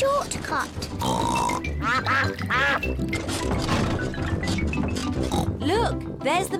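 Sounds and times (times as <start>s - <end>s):
speech: 0.0s - 4.0s, 5.0s - 6.5s
several ducks quacking: 1.0s - 2.9s.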